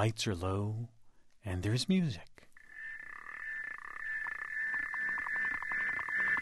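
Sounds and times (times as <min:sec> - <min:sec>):
speech: 0:00.0 - 0:02.5
South African clawed frog mating call of metallic clicks and ticking trills: 0:02.5 - 0:06.4.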